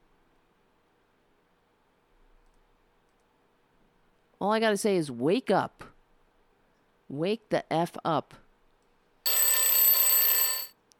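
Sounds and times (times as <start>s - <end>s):
speech: 4.4s - 5.9s, 7.1s - 8.4s
electronic telephone ringing: 9.3s - 10.8s.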